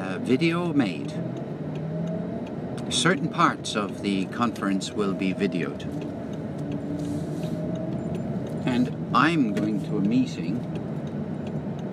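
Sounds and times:
police car engine and road rumble: 0.0s - 11.9s
speech: 0.2s - 1.4s, 2.9s - 6.2s, 8.7s - 10.8s.

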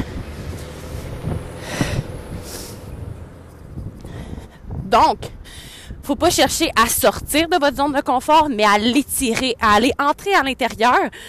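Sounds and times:
fire truck engine rumble passing by outside: 0.0s - 7.2s
speech: 4.9s - 11.2s.

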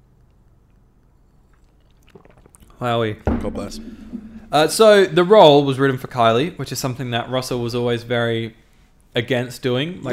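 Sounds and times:
low hum: 0.0s - 10.1s
person sipping a drink: 0.8s - 2.8s
swallowing: 1.4s - 2.8s
slurp: 1.5s - 2.8s
speech: 2.2s - 8.6s, 9.2s - 10.1s.

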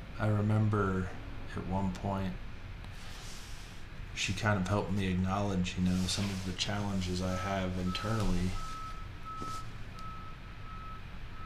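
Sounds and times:
garbage truck low engine rumble: 0.0s - 11.4s
speech: 0.2s - 2.5s, 4.2s - 8.7s, 9.4s - 9.6s
garbage truck reversing alarm beeping: 7.5s - 11.4s.

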